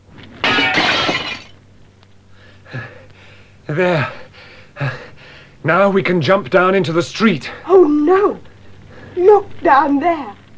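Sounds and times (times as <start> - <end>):
glass shards tinkling: 0.4 - 1.6
window glass shattering: 0.4 - 1.6
speech: 3.7 - 4.2, 5.6 - 8.5, 9.2 - 10.4.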